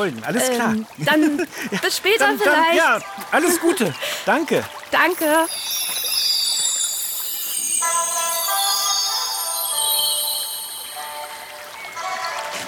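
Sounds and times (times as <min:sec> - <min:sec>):
speech: 0:00.0 - 0:06.0
rushing stream water: 0:00.0 - 0:12.6
high chirping tones: 0:05.0 - 0:12.0.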